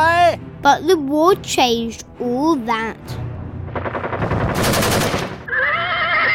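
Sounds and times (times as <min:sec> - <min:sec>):
speech: 0:00.6 - 0:03.2
machine gun fire in dense bursts: 0:03.6 - 0:05.5
horse letting out a shrill wavering neigh: 0:05.4 - 0:06.3.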